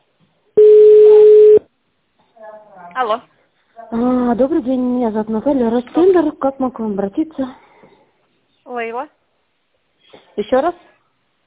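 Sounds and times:
steady mid-pitched telephone line tone while an office call is transferred: 0.6 - 1.6
speech: 3.0 - 3.3, 3.9 - 7.6, 8.7 - 9.2, 10.4 - 10.9.

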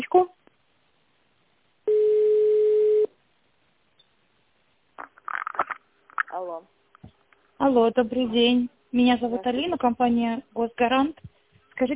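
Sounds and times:
single-pitch telephone tone during a call transfer: 1.9 - 3.1
speech: 6.4 - 6.8, 7.6 - 11.9.

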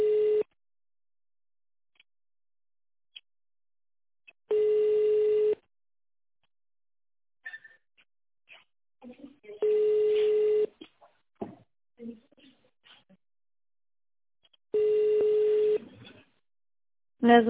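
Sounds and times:
touch-tone dialing of a phone extension number: 4.5 - 5.6, 9.6 - 10.7, 14.8 - 15.8
quieter recorded speech: 17.2 - 17.4.

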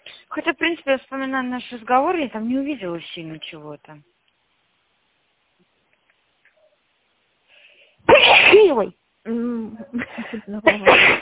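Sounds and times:
speech: 0.4 - 4.2, 8.7 - 11.2
woman sneezing: 8.1 - 8.8, 10.6 - 11.2.

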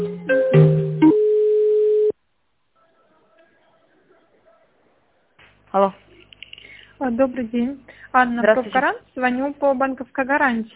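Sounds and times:
telephone line tones while a call is transferred: 1.0 - 2.2
speech: 7.1 - 10.7.

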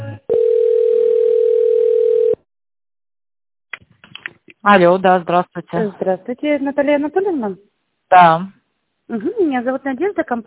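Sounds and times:
telephone line tone while an office call is transferred: 0.3 - 2.5
speech: 4.7 - 10.4.

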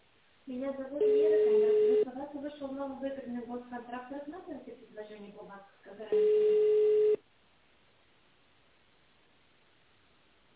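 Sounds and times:
speech: 0.5 - 7.1
telephone ringback tone on a call to a company reception line: 1.0 - 2.0, 6.1 - 7.2.

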